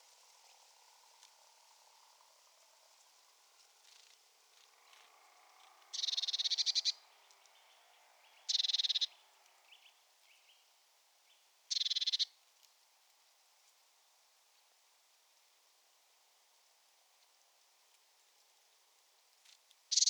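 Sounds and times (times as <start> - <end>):
Cyanistes caeruleus churring: 5.9 - 7.0, 8.5 - 9.2, 11.7 - 12.3.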